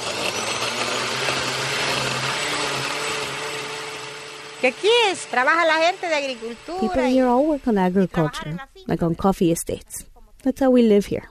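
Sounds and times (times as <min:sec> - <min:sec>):
old blender grinding salsa: 0:00.0 - 0:08.3
speech: 0:04.6 - 0:11.2.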